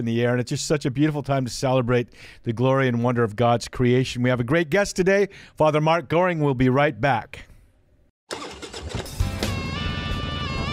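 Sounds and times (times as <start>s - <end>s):
speech: 0.0s - 7.5s
motorcycle engine kickstarted and revving: 8.3s - 10.7s.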